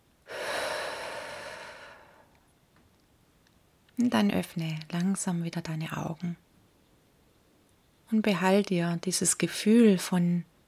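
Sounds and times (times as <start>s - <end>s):
deep breath in and out during a guided relaxation exercise: 0.3s - 2.4s
speech: 4.0s - 6.5s, 8.1s - 10.6s.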